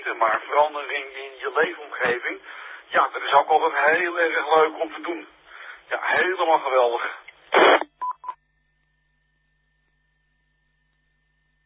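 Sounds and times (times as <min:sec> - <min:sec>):
speech: 0:00.2 - 0:07.9
burst of static: 0:07.5 - 0:07.9.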